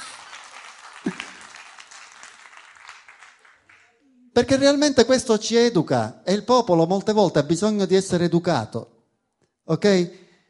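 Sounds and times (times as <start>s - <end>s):
audience applauding: 0.0s - 4.0s
speech: 4.4s - 8.9s, 9.7s - 10.2s.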